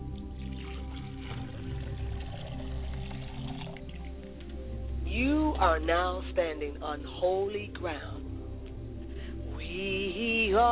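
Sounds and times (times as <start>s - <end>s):
water poured onto the ground: 0.0s - 4.6s
low steady hum: 0.0s - 10.7s
speech: 5.2s - 8.2s, 9.8s - 10.7s.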